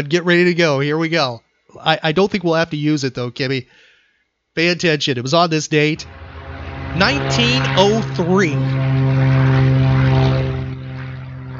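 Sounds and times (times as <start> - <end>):
speech: 0.0 - 3.9, 4.6 - 6.2, 7.0 - 9.3
propeller airplane droning overhead: 5.8 - 11.5.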